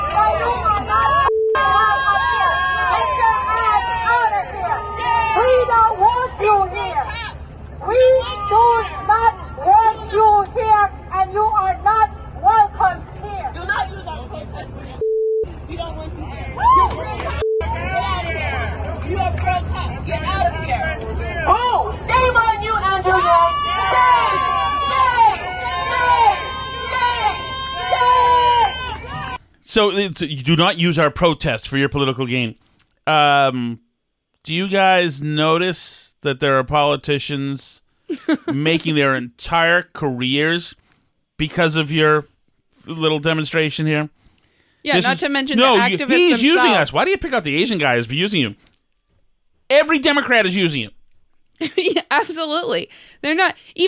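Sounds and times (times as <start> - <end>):
loud outdoor rally crowd shouting and jeering: 0.0 - 14.0, 16.2 - 29.4
speech: 29.8 - 33.8, 34.4 - 40.8, 41.4 - 44.2, 44.8 - 48.7, 49.7 - 51.0, 51.6 - 53.8.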